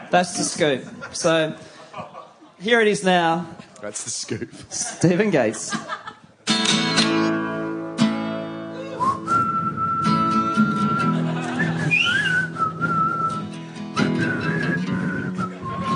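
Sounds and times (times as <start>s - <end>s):
laughter: 0.0s - 2.6s, 3.6s - 6.5s, 10.8s - 12.4s
speech: 0.1s - 6.1s
loud instrumental backing: 6.5s - 15.9s
person whistling a melody: 8.8s - 15.9s.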